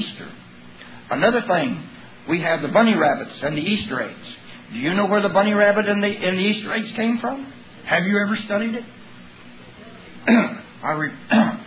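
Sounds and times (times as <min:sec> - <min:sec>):
speech: 0:01.1 - 0:09.0, 0:10.3 - 0:11.6
person clearing throat mid-speech: 0:10.2 - 0:10.7, 0:11.3 - 0:11.6
person coughing mid-speech: 0:10.2 - 0:10.7, 0:11.3 - 0:11.6.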